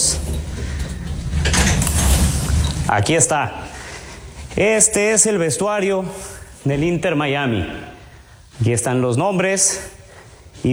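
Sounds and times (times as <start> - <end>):
low rumble: 0.0 - 4.6
door sliding open: 0.0 - 5.3
speech: 2.9 - 3.6, 4.6 - 8.0, 8.6 - 10.0.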